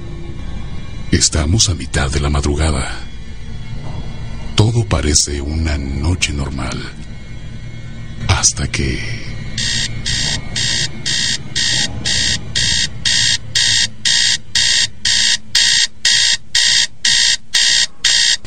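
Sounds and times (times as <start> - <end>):
low rumbling background: 0.0 - 18.4
speech: 1.1 - 3.1, 4.7 - 7.1, 8.3 - 9.3
alarm clock ringing in fast electronic beeps: 4.6 - 18.4.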